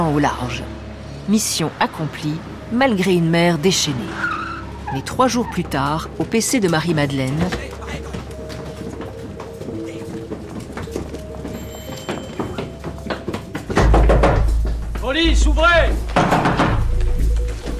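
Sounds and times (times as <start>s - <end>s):
speech: 0.0s - 7.7s
many footsteps clattering on stairs: 5.0s - 17.7s
knocking thuds: 12.4s - 17.7s
door being forced open with a loud heavy crash: 16.0s - 17.1s.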